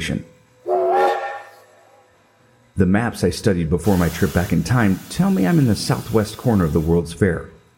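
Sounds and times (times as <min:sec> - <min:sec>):
speech: 0:00.0 - 0:00.4, 0:02.8 - 0:07.6
train whistle blast at busy train station: 0:00.6 - 0:01.9.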